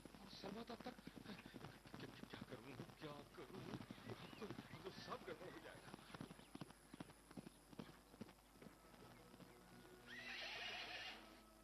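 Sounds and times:
horse hooves clip-clopping: 0.0s - 11.6s
speech: 0.4s - 1.5s, 3.0s - 6.0s
horse whinnying: 10.0s - 11.4s.

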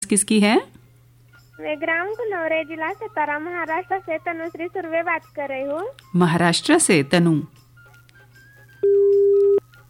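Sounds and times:
speech: 0.1s - 0.7s, 1.6s - 7.6s
phone line beep after a telephone call cuts off: 8.8s - 9.6s.

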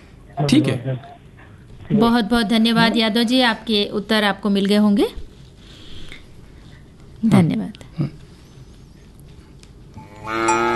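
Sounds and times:
speech: 0.4s - 1.1s, 1.9s - 5.2s, 7.2s - 7.6s
cow mooing in a long harmonic bellow: 10.0s - 10.7s.

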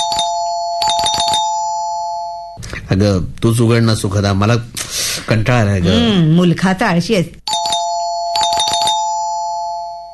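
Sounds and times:
doorbell ringing: 0.0s - 2.6s, 7.5s - 10.1s
speech: 2.9s - 7.4s.

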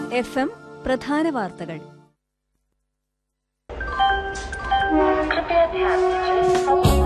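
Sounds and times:
speech: 0.2s - 2.0s, 4.9s - 6.3s
train horn: 4.8s - 6.9s.

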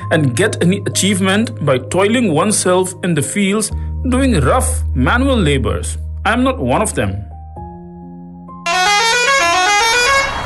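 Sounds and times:
speech: 0.1s - 7.3s
bus horn blaring: 8.6s - 10.4s.

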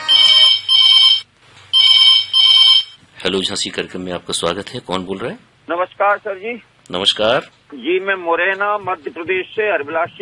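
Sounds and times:
electronic telephone ringtone for an incoming call to a call-in program: 0.0s - 3.0s
speech: 3.2s - 10.1s.

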